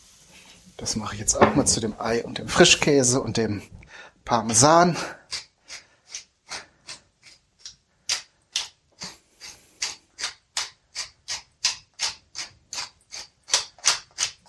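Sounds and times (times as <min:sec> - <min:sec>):
speech: 0:00.8 - 0:05.4
pepper mill grinding pepper onto egg, cream cheese and Parmesan: 0:05.3 - 0:14.4.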